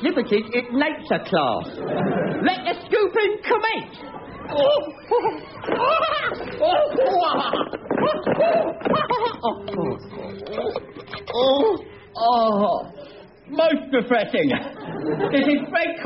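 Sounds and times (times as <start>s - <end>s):
young schoolboys from an infant school class chattering: 0.0s - 16.0s
speech: 0.1s - 16.0s
young schoolboys giggling and laughing: 4.4s - 11.9s, 14.4s - 16.0s.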